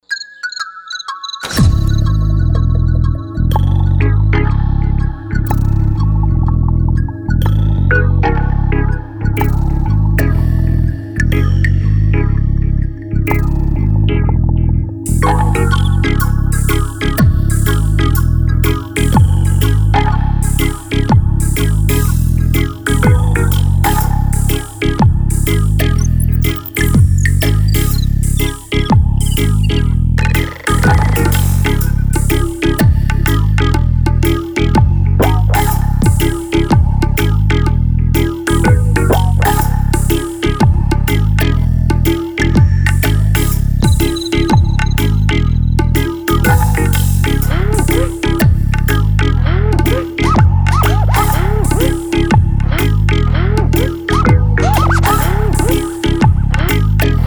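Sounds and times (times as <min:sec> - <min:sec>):
dub music: 0:01.4 - 0:57.2.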